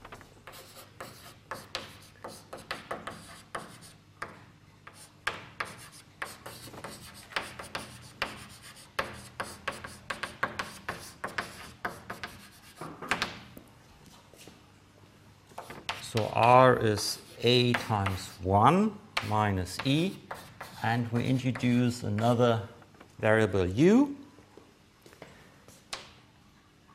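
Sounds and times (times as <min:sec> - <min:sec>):
scratchy writing strokes writing out an orbit equation solution: 0:00.4 - 0:04.0, 0:04.9 - 0:12.9, 0:15.6 - 0:18.5, 0:19.2 - 0:22.3
speech: 0:16.2 - 0:20.2, 0:20.8 - 0:24.2.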